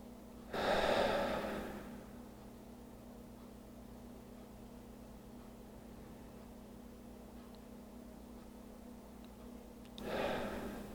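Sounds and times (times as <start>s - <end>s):
gentle breath during a guided relaxation exercise: 0.5s - 2.4s, 10.0s - 10.9s.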